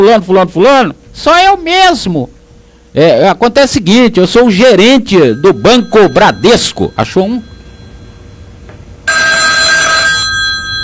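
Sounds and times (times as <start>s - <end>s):
speech: 0.0s - 7.5s
old rotary dial telephone ringing with a loud bright mechanical bell: 3.8s - 10.8s.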